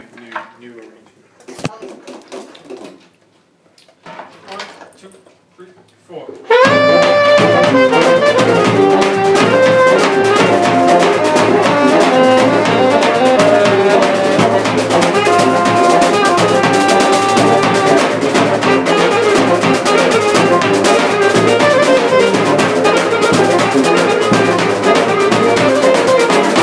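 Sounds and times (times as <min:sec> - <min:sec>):
Bulgarian wedding music break: 0:06.5 - 0:26.6.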